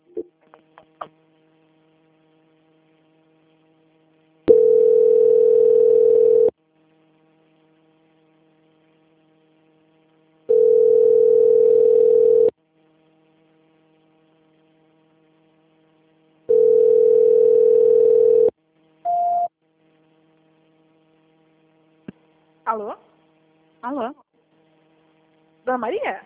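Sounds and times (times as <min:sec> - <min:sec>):
telephone line beeps while a bank call is being transferred: 0:04.5 - 0:06.5, 0:10.5 - 0:12.5, 0:16.5 - 0:18.5
speech: 0:25.8 - 0:26.2.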